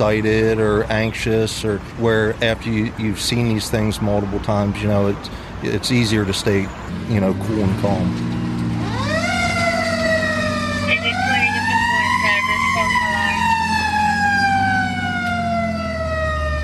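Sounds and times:
speech: 0.0s - 8.3s
fire engine truck engine rumble: 0.0s - 16.6s
fire engine siren wailing on a medical call: 8.3s - 16.6s.

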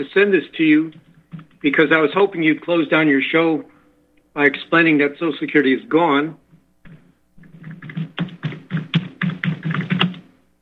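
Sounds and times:
speech: 0.0s - 1.0s, 1.6s - 3.7s, 4.4s - 6.4s
forceful typing on a computer keyboard: 6.9s - 10.3s.

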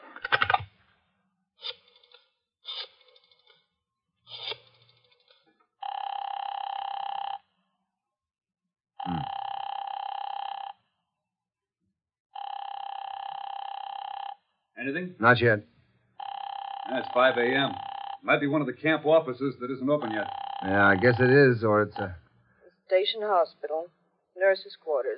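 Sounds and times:
telephone ringing tones: 5.8s - 7.4s, 9.0s - 10.7s, 12.4s - 14.4s, 16.2s - 18.8s, 19.9s - 22.2s
speech: 14.9s - 15.7s, 16.9s - 22.2s, 22.9s - 25.1s.

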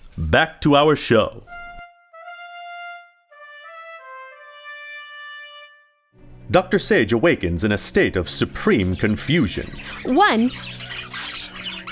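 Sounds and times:
speech: 0.3s - 1.5s, 6.5s - 10.8s
bird calls and screeches in a laboratory: 8.8s - 11.9s.

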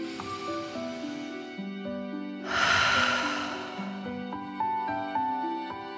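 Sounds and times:
soft sustained musical tones: 0.0s - 5.6s
deep breath in and forceful exhale through the mouth: 2.5s - 4.6s.

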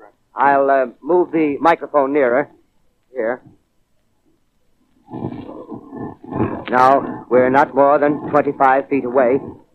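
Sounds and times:
speech: 0.4s - 2.6s, 3.2s - 3.6s, 6.3s - 9.6s
loud low throbbing humming drone: 5.1s - 9.7s.

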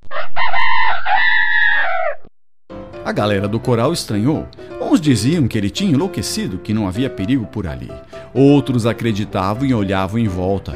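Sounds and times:
rooster crowing over farm loudspeaker as an alarm: 0.1s - 2.3s
speech: 3.1s - 10.7s.

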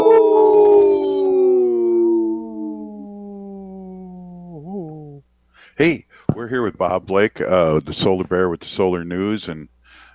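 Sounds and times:
wolf howling: 0.0s - 5.2s
speech: 5.8s - 9.7s.

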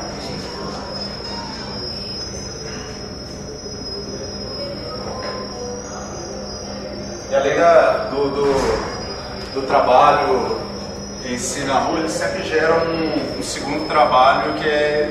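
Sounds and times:
high steady whistling tone: 0.0s - 15.0s
speech: 7.4s - 8.9s, 9.6s - 10.6s, 11.2s - 15.0s
low rumbling wash of noise: 8.2s - 11.6s.

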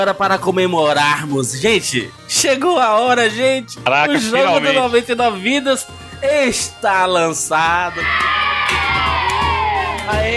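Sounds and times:
speech: 0.0s - 9.2s, 10.1s - 10.3s
children shouting and cheering: 7.9s - 10.2s.

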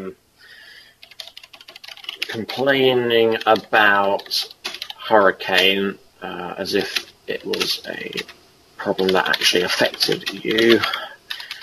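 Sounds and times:
computer keyboard typing: 1.0s - 2.7s, 3.3s - 5.8s, 6.7s - 11.6s
speech: 2.4s - 11.1s.

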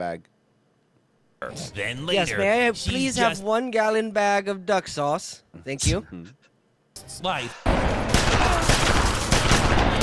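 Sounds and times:
speech: 0.0s - 0.4s, 1.4s - 6.4s, 7.0s - 8.7s
gunfire in an action film shootout: 7.6s - 10.0s.

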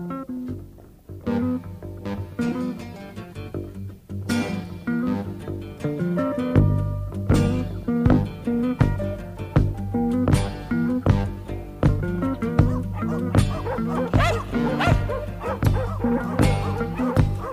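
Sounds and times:
tonal music: 0.6s - 17.5s
crowd of dogs barking and yipping: 12.4s - 17.5s.

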